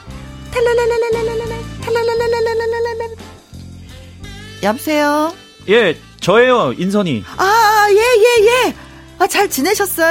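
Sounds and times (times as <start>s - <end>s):
low accompaniment: 0.0s - 8.2s
speech: 0.6s - 3.2s, 4.6s - 10.0s
electronic phone ringtone for an incoming call: 1.1s - 2.8s.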